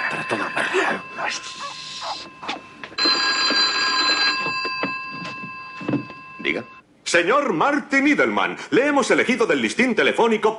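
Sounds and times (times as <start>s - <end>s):
telephone ringing with a bright metallic bell tone: 0.0s - 6.8s
speech: 0.1s - 2.7s, 6.5s - 10.5s.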